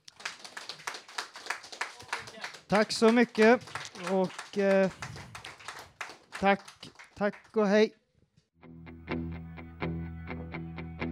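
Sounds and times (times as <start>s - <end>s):
warm audience applause from a few hands clapping: 0.0s - 7.7s
speech: 2.7s - 5.1s, 6.4s - 8.0s.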